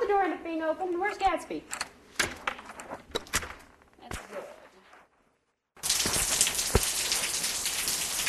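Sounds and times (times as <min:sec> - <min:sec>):
speech: 0:00.1 - 0:01.8
rain falling outside: 0:05.8 - 0:08.2.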